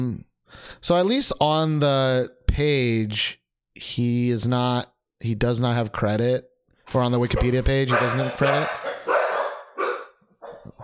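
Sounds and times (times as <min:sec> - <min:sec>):
speech: 0:00.0 - 0:08.8
dogs barking at doorbell: 0:07.3 - 0:10.8.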